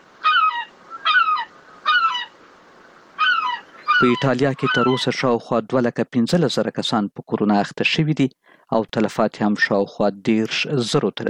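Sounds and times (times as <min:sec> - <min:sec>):
seagulls calling in city streets in Rome: 0:00.0 - 0:05.3
speech: 0:04.0 - 0:11.2.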